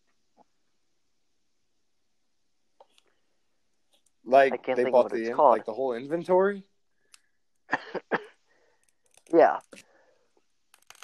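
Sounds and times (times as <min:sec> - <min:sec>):
speech: 0:04.3 - 0:06.7, 0:09.3 - 0:09.8
person coughing: 0:07.7 - 0:08.4.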